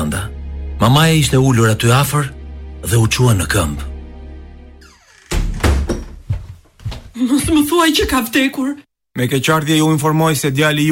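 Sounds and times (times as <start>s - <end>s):
speech: 0.1s - 3.9s, 7.2s - 10.9s
knocking on a house door: 5.3s - 8.3s.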